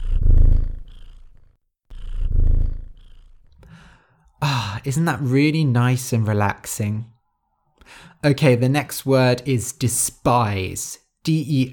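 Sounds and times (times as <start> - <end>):
cat purring: 0.0 - 3.6
speech: 4.8 - 7.1, 8.2 - 11.7.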